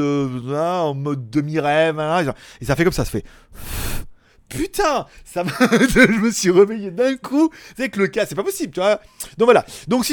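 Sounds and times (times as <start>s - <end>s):
speech: 0.0s - 3.8s, 4.5s - 10.1s
person imitating a sudden sharp breath: 3.3s - 4.4s
laughter: 5.4s - 6.5s.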